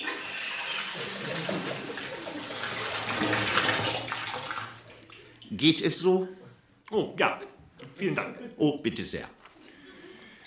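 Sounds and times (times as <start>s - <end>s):
hot water running into a bathtub: 0.0s - 5.4s
speech: 5.5s - 9.4s.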